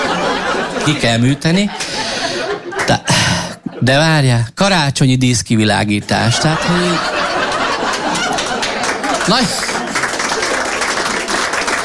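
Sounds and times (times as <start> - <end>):
laughter: 0.0 - 4.0, 6.1 - 11.8
speech: 0.8 - 1.8, 2.9 - 3.2, 3.8 - 7.2, 9.3 - 9.6
crowd applauding: 6.7 - 11.8.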